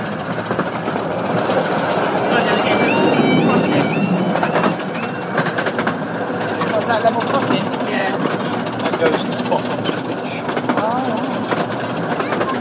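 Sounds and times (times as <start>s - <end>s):
moving miniature steam train rumbling and clattering: 0.0s - 12.5s
faint voices: 1.6s - 5.7s, 6.3s - 12.5s
miniature railway level crossing alarm in two-tone pattern: 2.2s - 5.7s.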